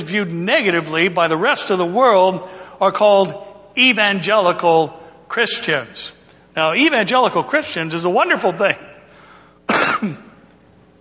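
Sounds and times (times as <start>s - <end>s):
speech: 0.0s - 8.9s, 10.0s - 10.2s
harsh throat clearing: 9.7s - 10.4s.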